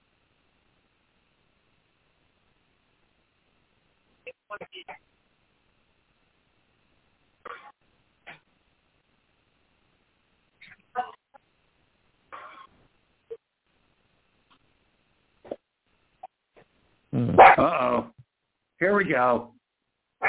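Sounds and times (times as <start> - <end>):
speech: 4.5 - 5.2, 19.2 - 19.5
dogs barking: 17.4 - 17.8.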